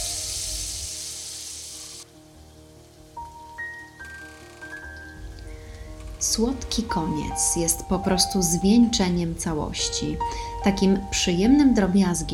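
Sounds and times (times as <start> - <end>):
rice flour pancakes with wild strawberries sizzling in a coconut oil pan: 0.0 - 2.1
speech: 6.2 - 12.3.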